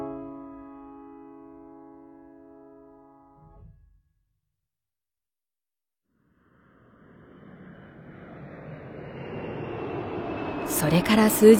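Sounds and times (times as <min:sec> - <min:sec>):
airplane taking off with a broad roar: 0:06.2 - 0:11.5
sustained tonal sound: 0:06.4 - 0:11.5
speech: 0:11.2 - 0:11.5.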